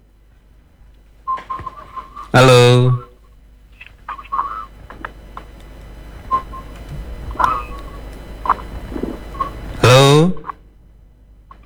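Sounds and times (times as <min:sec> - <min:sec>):
electronic telephone tones near one kilohertz on a call-in line: 0:01.3 - 0:03.0, 0:04.1 - 0:04.8, 0:06.2 - 0:09.8
speech: 0:02.3 - 0:03.0.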